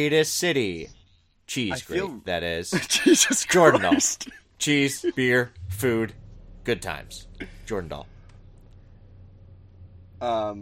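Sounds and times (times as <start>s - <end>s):
speech: 0.0s - 8.1s, 10.2s - 10.6s
laughter: 2.7s - 5.5s
truck engine rumbling: 3.4s - 10.6s.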